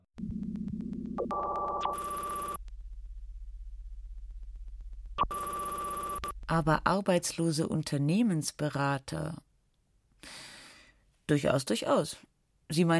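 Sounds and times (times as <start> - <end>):
telephone ringing with a busy electronic ringtone: 1.2 - 2.6, 5.2 - 6.3
speech: 1.3 - 1.6, 6.5 - 9.5, 11.3 - 12.9.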